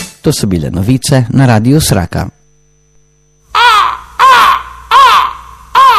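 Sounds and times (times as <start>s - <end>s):
speech: 0.3s - 2.3s
birds screeching: 3.5s - 5.9s.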